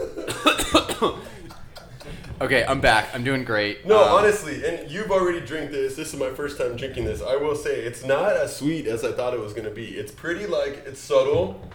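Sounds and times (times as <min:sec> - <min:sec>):
harsh spluttering coughing after choking on a drink: 0:00.0 - 0:02.4
laughter: 0:00.0 - 0:03.1
speech: 0:00.4 - 0:01.3, 0:02.4 - 0:11.7.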